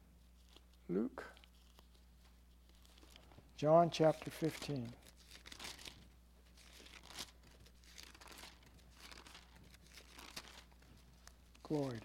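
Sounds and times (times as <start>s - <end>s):
low steady hum: 0.0s - 12.0s
Bible pages rustling as they are turned: 0.2s - 12.0s
speech: 0.9s - 1.4s, 3.6s - 5.1s, 11.7s - 12.0s.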